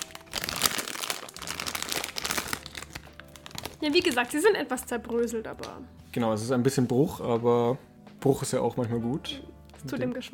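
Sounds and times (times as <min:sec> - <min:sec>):
plastic wrapping of a snack package crinkling as it is pulled open: 0:00.0 - 0:04.4
speech: 0:03.8 - 0:10.3.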